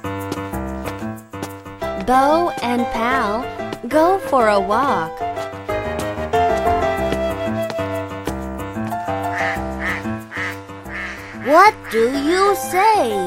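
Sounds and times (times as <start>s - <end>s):
bouncy instrumental music: 0.0s - 13.2s
speech: 2.1s - 5.2s, 11.5s - 13.2s
duck quacking: 9.3s - 12.6s.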